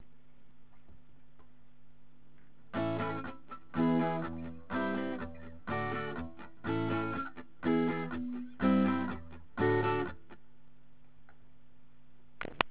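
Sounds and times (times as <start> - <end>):
fret hand muted guitar: 2.7 - 10.4.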